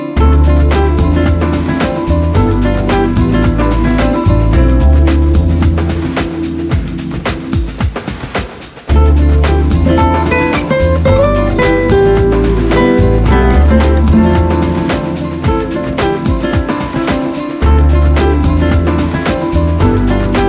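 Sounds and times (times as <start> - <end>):
ambient chillout music: 0.2 - 20.4.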